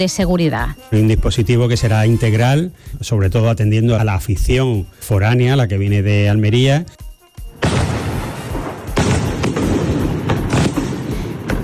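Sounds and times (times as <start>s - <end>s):
speech: 0.0s - 7.0s
string of fireworks and firecrackers exploding outdoors: 7.6s - 11.6s.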